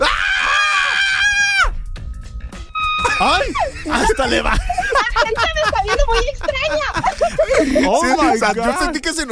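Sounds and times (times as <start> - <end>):
people screaming loudly: 0.0 - 1.8, 2.7 - 4.2
laughter: 3.0 - 9.0
speech: 3.2 - 9.3.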